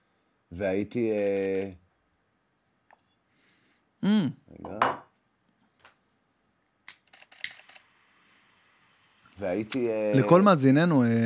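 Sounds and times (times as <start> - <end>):
speech: 0.5 - 1.8, 4.0 - 5.0, 9.4 - 11.2
camera shutter clicking: 6.9 - 7.9
faint hiss: 7.5 - 11.2.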